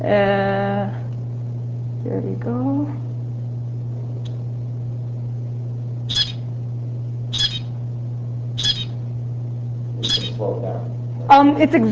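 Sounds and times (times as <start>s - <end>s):
speech: 0.0s - 1.0s, 2.1s - 3.1s, 10.0s - 11.8s
constant low hum: 0.0s - 11.8s
faint chirp: 6.1s - 6.5s, 7.3s - 7.7s, 8.6s - 9.0s, 10.0s - 10.4s
zebra finch short high buzzy calls: 6.1s - 6.5s, 7.3s - 7.8s, 8.6s - 9.0s, 10.0s - 10.5s
zebra finch song: 6.1s - 6.5s, 7.3s - 7.7s, 8.6s - 9.0s, 10.0s - 10.4s.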